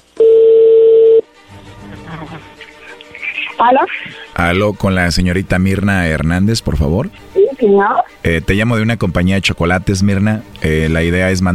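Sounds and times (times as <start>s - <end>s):
telephone dial tone: 0.2s - 1.2s
telephone line noise: 0.2s - 1.2s
speech: 3.6s - 11.5s.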